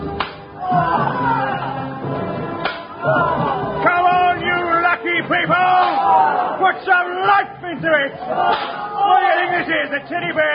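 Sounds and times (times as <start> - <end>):
groaning murmuring voices: 0.0 - 10.5
whip cracks: 0.2 - 0.4, 2.6 - 2.9, 8.5 - 8.8
speech: 6.7 - 10.5.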